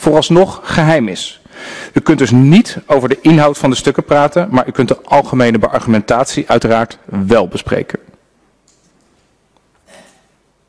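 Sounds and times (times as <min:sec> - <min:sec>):
speech: 0:00.0 - 0:08.1
low hiss: 0:00.0 - 0:10.6
small soft cough during a provincial council meeting: 0:09.8 - 0:10.4.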